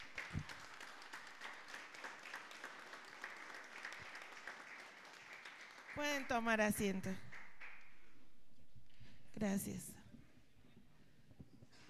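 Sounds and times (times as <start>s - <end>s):
audience applause at a municipal council session: 0.0s - 6.2s
speech: 6.0s - 7.3s, 9.4s - 10.0s.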